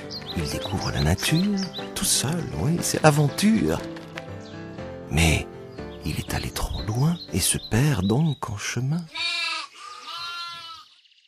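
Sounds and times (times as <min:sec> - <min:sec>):
speech: 0:00.4 - 0:04.0, 0:05.1 - 0:09.4
single sheep bleating: 0:09.1 - 0:10.9.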